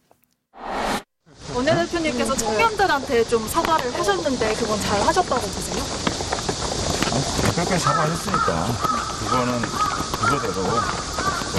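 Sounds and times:
speech: 0:01.6 - 0:06.2, 0:07.2 - 0:11.5
crow cawing: 0:07.7 - 0:11.5.

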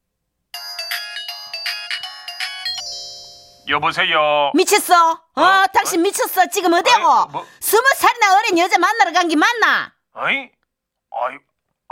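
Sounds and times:
bright electronic phone ringtone on an outgoing call: 0:00.6 - 0:03.9
speech: 0:03.7 - 0:10.6, 0:11.2 - 0:11.9.

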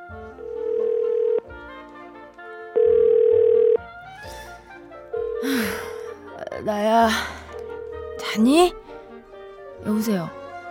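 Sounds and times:
electronic telephone ringing tones on an outgoing call: 0:00.4 - 0:01.5, 0:02.8 - 0:03.8
speech: 0:06.7 - 0:07.4, 0:08.3 - 0:08.8, 0:09.9 - 0:10.4.

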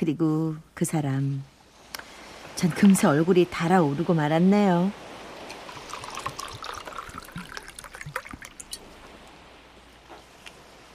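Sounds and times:
speech: 0:00.0 - 0:01.5, 0:02.6 - 0:05.0
soju poured into a glass: 0:05.5 - 0:08.9.

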